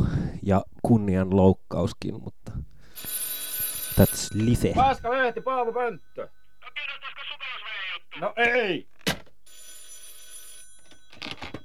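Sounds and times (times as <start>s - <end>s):
speech: 0.5s - 2.6s, 4.0s - 7.0s, 8.2s - 8.9s
telephone bell ringing: 2.9s - 8.4s, 9.4s - 11.6s.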